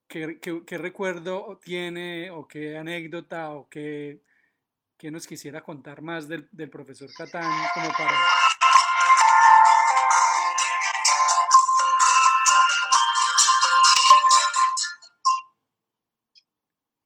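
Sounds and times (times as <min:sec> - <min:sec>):
speech: 0:00.1 - 0:04.3, 0:05.0 - 0:08.6
mobile phone ringtone playing a bright pulsing electronic melody: 0:07.2 - 0:15.6.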